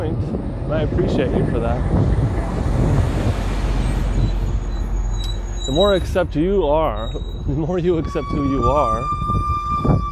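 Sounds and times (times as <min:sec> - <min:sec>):
truck rumbling past: 0:00.0 - 0:10.1
speech: 0:00.2 - 0:02.4, 0:05.7 - 0:09.2
wavering squealing tone: 0:03.8 - 0:10.1.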